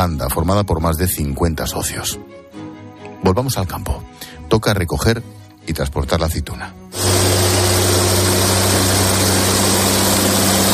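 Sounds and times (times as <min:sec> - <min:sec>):
speech: 0:00.0 - 0:02.4, 0:03.2 - 0:07.1
tractor engine droning while driving across an olive farm near Madrid: 0:07.0 - 0:10.7.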